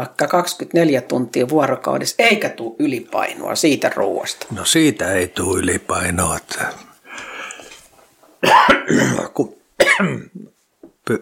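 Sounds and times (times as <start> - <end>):
speech: 0.0 - 6.9, 8.4 - 10.5
person coughing harshly: 8.4 - 10.5
rough throat noise: 8.4 - 11.2.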